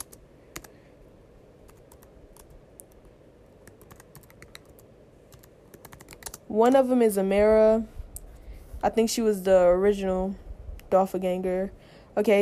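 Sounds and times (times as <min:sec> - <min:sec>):
rapid irregular typing on a computer keyboard: 0:00.0 - 0:00.8, 0:01.7 - 0:06.4
low constant hum: 0:00.0 - 0:12.4
speech: 0:06.5 - 0:08.0, 0:08.8 - 0:12.4.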